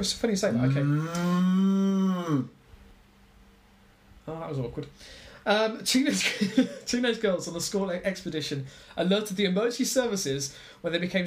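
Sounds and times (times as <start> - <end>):
speech: 0.0 - 2.6, 4.3 - 11.2
person imitating a cow's moo: 0.6 - 2.6.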